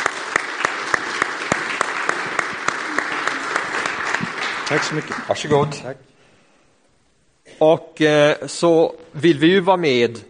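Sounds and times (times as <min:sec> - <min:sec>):
church parish audience applauding: 0:00.0 - 0:06.0
speech: 0:04.7 - 0:06.1, 0:07.6 - 0:10.2.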